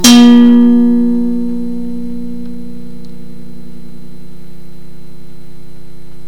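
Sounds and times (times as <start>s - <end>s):
blues music: 0.0s - 4.3s.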